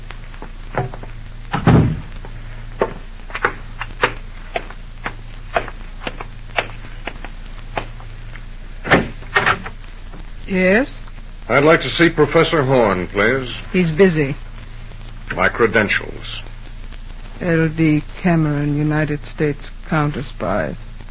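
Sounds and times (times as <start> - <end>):
low steady hum: 0.0 - 21.0
firm bumps: 0.7 - 8.1
door closing with a thud: 1.5 - 2.1, 8.8 - 9.7
speech: 10.5 - 14.4, 15.4 - 16.5, 17.4 - 20.9.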